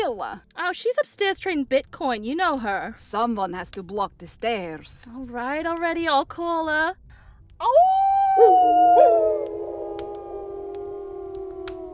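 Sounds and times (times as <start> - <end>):
speech: 0.1 - 7.0, 7.6 - 9.8
wolves howling in a mournful chorus: 7.8 - 11.9.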